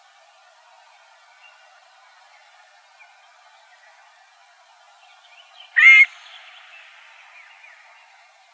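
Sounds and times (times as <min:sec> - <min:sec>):
faint background hiss: 0:00.0 - 0:08.5
scaled quail nasal harsh note in Arizona: 0:05.8 - 0:06.2.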